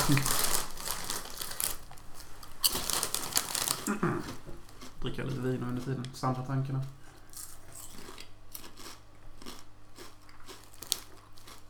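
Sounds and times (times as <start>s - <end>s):
crinkly plastic chips bag rustling as it's handled and set down: 0.0s - 4.9s
speech: 0.1s - 0.4s, 5.0s - 7.0s.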